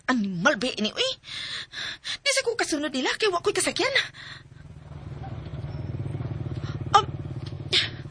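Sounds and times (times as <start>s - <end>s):
speech: 0.1s - 4.4s
motorcycle engine idling: 3.9s - 8.0s.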